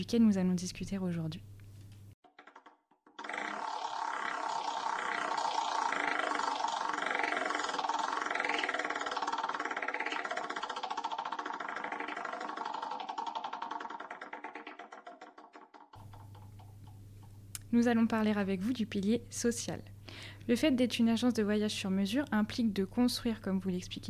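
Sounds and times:
speech: 0.0 - 1.6, 17.8 - 24.0
prize-style game wheel spinning: 2.2 - 17.0.

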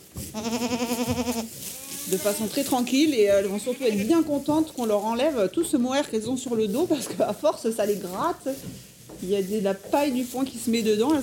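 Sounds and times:
angora goat bleating: 0.3 - 2.6, 3.3 - 4.2
speech: 0.4 - 1.0, 2.1 - 11.2.

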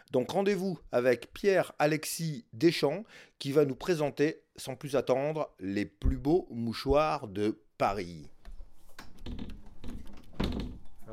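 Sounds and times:
speech: 0.1 - 8.4
door pushed open with soft thumps and rattles as someone walks in: 9.0 - 11.1.

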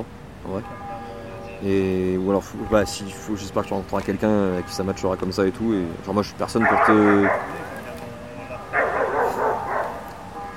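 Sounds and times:
speech: 0.0 - 0.8, 1.6 - 7.7
dog barking and yipping: 6.6 - 7.8, 8.6 - 10.3.

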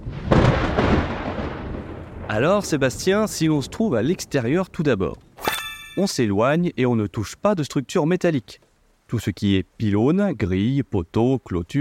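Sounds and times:
thunder clap rolling into deep rumble from a thunderstorm: 0.0 - 5.2
speech: 2.3 - 5.3, 6.0 - 11.7.

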